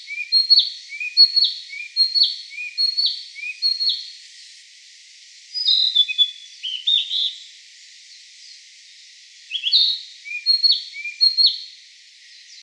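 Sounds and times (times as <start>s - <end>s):
Narcissus flycatcher singing short repeated whistled phrases: 0.0s - 4.1s, 5.5s - 7.4s, 9.5s - 11.7s.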